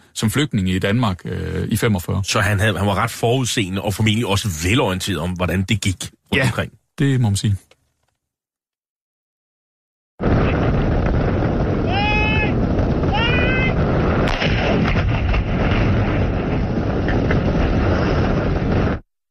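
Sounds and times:
speech: 0.2 - 7.7
German World War II anti-tank mine explosion on Guernsey: 10.2 - 19.0
strong wind roaring over the microphone: 10.2 - 19.0.

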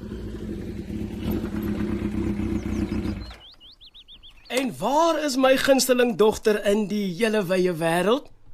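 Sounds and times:
motorcycle engine rumbling as it pulls up in a home's driveway in the morning: 0.0 - 5.0
birds chirping: 0.0 - 7.7
speech: 4.5 - 8.3.

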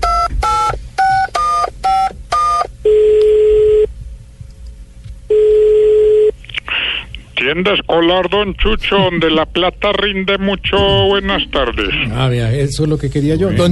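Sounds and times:
telephone keypad tones dialing a number: 0.0 - 3.9
telephone ringing tones for a call to a school supply shop: 0.0 - 3.9, 5.3 - 6.3
speech: 7.5 - 13.6.

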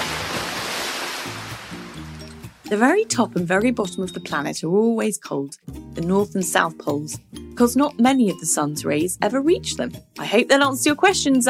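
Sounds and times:
ocean waves on a beach: 0.0 - 2.7
speech: 2.7 - 11.4.

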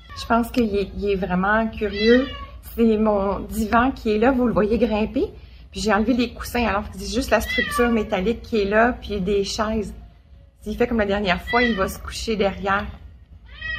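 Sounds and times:
domestic cat meowing: 0.0 - 0.4, 1.8 - 2.6, 7.4 - 8.2, 11.4 - 12.1, 13.4 - 13.7
speech: 0.2 - 10.0, 10.6 - 13.0.

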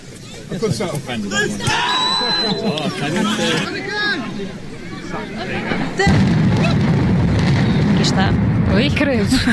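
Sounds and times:
large crowd chattering and calling out: 0.0 - 9.5
speech: 0.5 - 7.0, 8.0 - 9.5
laughter: 1.3 - 6.8, 9.2 - 9.5
demolition blast of power station towers: 5.5 - 9.5.

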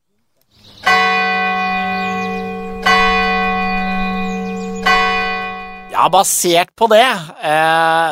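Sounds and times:
large church bell tolling: 0.8 - 6.2
speech: 6.0 - 8.1.

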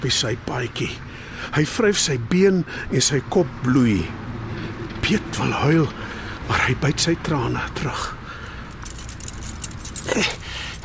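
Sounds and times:
speech: 0.0 - 4.2, 5.1 - 8.2, 10.1 - 10.7
keys jangling: 8.4 - 10.8.

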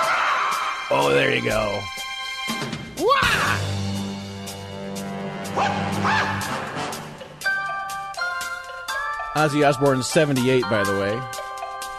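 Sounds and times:
martial arts film theme music: 0.0 - 11.9
speech: 0.9 - 2.0, 2.6 - 3.8, 5.6 - 7.0, 9.3 - 11.4.

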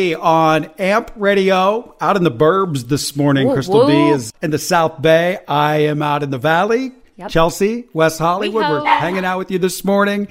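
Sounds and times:
speech: 0.0 - 10.2
dog barking: 8.6 - 9.3.

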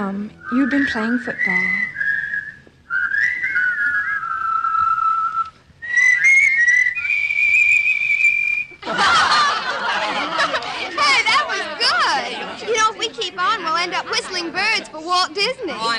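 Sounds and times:
speech: 0.0 - 1.9
person whistling at a party: 0.4 - 8.8
people laughing at a busy gathering: 8.8 - 15.7
lively crowd chatter at a busy gathering: 8.8 - 15.9.

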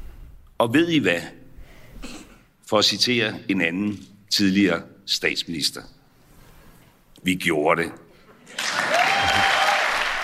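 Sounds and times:
speech: 0.6 - 1.4, 2.7 - 6.0, 7.2 - 8.6
crowd applause: 8.5 - 10.2.

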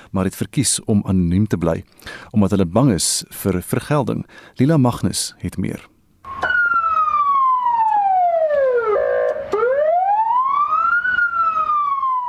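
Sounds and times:
speech: 0.1 - 5.9
police car siren wailing: 6.3 - 12.2.

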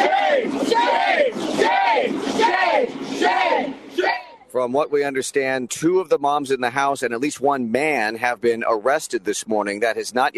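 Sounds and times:
crowd of housing protesters chanting and yelling at sheriff's deputies outside a vacant house: 0.0 - 5.2
speech: 4.6 - 10.3.

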